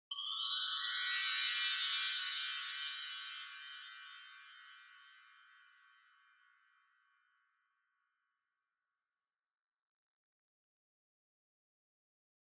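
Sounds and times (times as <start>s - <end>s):
wind chimes: 0.1s - 6.4s.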